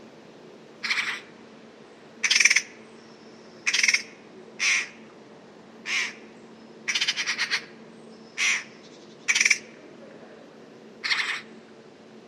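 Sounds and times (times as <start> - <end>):
steady background noise: 0.0 - 12.2
bird giving rough pulsed pi pi pi pi calls: 0.8 - 1.3, 2.2 - 2.8, 3.6 - 5.0, 5.9 - 6.2, 6.9 - 7.7, 9.3 - 9.6, 11.0 - 11.5.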